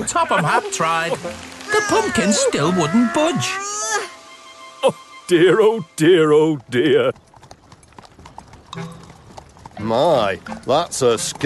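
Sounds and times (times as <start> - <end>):
speech: 0.1 - 4.2, 4.8 - 7.2, 9.8 - 11.4
horse hooves clip-clopping while pulling a cart: 6.3 - 11.4
cart rolling and creaking: 6.5 - 11.4.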